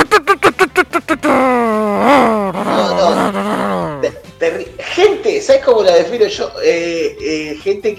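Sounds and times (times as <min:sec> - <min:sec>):
voice imitating a low car engine revving loudly: 0:00.0 - 0:04.2
speech: 0:05.4 - 0:07.9.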